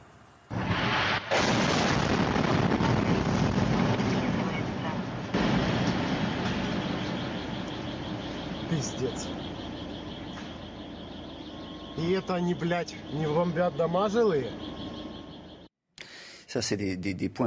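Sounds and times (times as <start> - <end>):
explosion from a strike on a residential area: 0.5 - 11.1
sustained roaring rumble after an explosion: 0.5 - 15.5
speech: 8.8 - 9.5, 12.0 - 14.8, 16.5 - 17.4.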